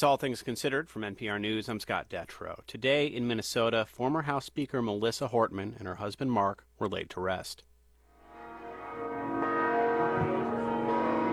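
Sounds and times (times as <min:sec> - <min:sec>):
speech: 0:00.0 - 0:07.7
church bells ringing at a basilica: 0:08.2 - 0:11.3.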